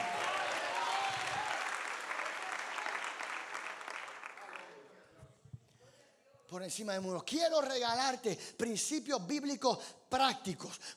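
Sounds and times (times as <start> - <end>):
crowd clapping and cheering: 0.0 - 4.9
speech: 6.5 - 10.9.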